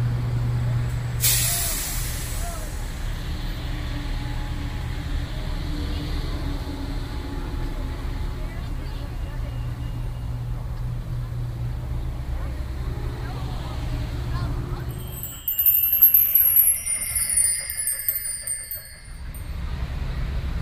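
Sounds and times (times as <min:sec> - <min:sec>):
heavy bus engine rumble: 0:00.0 - 0:20.6
bus air brake hiss: 0:01.2 - 0:03.0.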